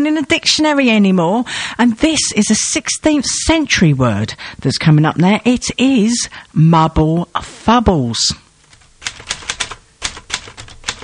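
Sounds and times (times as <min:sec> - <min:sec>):
speech: 0:00.0 - 0:08.4
keyboard typing: 0:08.6 - 0:11.0.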